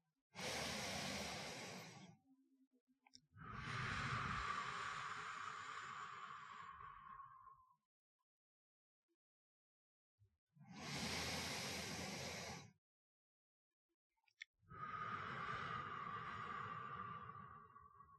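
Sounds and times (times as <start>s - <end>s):
slow deep breathing: 0.4s - 2.3s, 3.4s - 7.9s, 10.6s - 12.8s, 14.7s - 18.1s.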